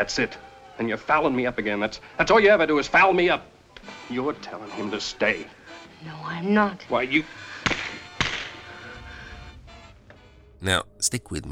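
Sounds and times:
speech: 0.0s - 7.5s, 10.6s - 11.5s
hiss: 0.0s - 11.5s
slap across a woman's face: 7.6s - 8.6s.

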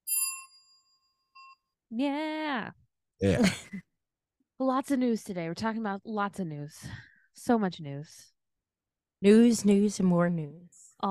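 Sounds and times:
bright notification bell ding: 0.0s - 1.6s
shorter softer chime: 0.0s - 1.7s
speech: 1.9s - 3.9s, 4.6s - 8.3s, 9.2s - 11.0s.

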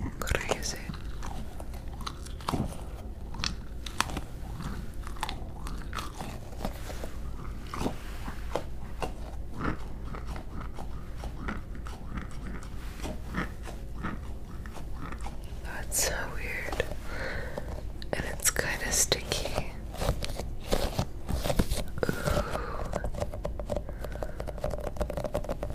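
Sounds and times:
low steady hum: 0.0s - 25.7s
fidget toys clicking, popping and snapping: 22.1s - 25.7s.

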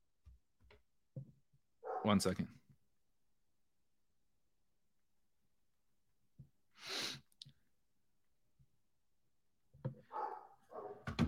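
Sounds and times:
dog barking: 1.8s - 2.2s, 10.1s - 11.1s
speech: 2.0s - 2.6s.

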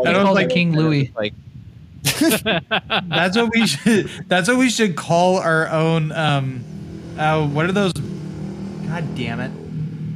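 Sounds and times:
speech: 0.0s - 8.1s, 8.9s - 9.6s
laughter: 2.1s - 4.4s
motorcycle roaring past outside: 6.2s - 10.1s.

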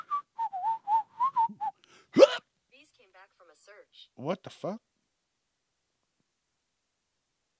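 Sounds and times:
man whistling a tune: 0.0s - 1.8s
speech: 4.2s - 4.9s.

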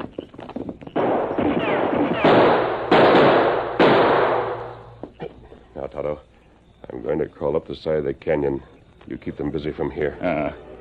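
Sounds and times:
gunshots from behind a large rock in a canyon: 1.0s - 5.0s
speech: 7.4s - 10.7s.

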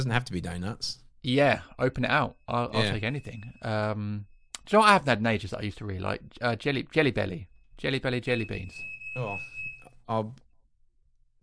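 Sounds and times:
speech: 0.0s - 9.5s, 10.1s - 10.4s
smoke alarm going off from bacon: 1.3s - 5.7s, 6.6s - 10.2s.

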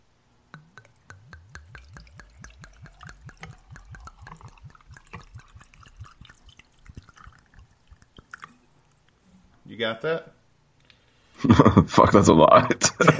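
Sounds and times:
vodka glugging out of a bottle: 0.5s - 9.2s
speech: 9.8s - 10.4s, 11.4s - 13.1s.

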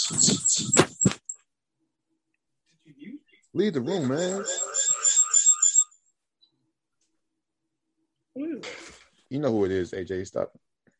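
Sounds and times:
high-pitched electronic chirping from an iPhone joining a Zoom meeting: 0.0s - 1.4s, 3.8s - 6.0s
speech: 0.1s - 0.9s, 3.6s - 4.8s, 9.3s - 10.8s.

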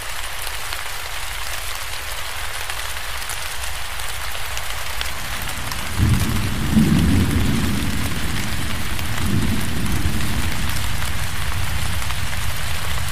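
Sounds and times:
steady dense rain in a forest: 0.0s - 13.1s
deep rolling rumble of thunder: 5.2s - 13.1s.

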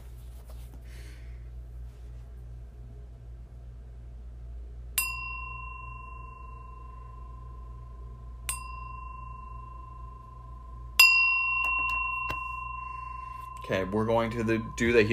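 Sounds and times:
low steady hum: 0.0s - 15.1s
meditation bell struck to begin a guided meditation: 5.0s - 15.1s
speech: 13.7s - 15.1s.

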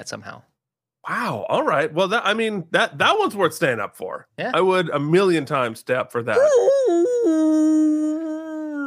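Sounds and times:
speech: 0.0s - 8.0s
person voicing a wavering tonal moan imitating a whale call: 6.4s - 8.8s.

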